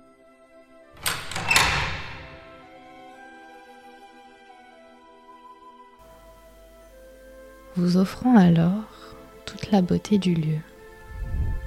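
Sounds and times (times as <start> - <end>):
heavy door opening with knocks and scrapes: 1.0 - 2.7
speech: 7.8 - 10.7.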